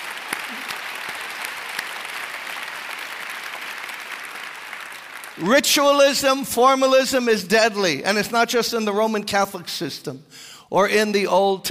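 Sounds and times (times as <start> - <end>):
large crowd applauding: 0.0 - 5.6
speech: 5.4 - 11.6.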